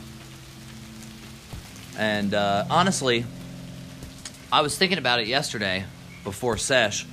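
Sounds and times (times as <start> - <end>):
steady rain falling outdoors: 0.0 - 7.1
speech: 2.0 - 3.4, 4.5 - 7.1.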